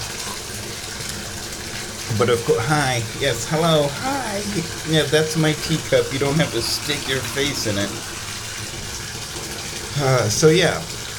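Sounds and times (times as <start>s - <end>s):
tap water pouring into a bathtub: 0.0s - 11.1s
speech: 2.2s - 8.2s, 10.0s - 11.0s.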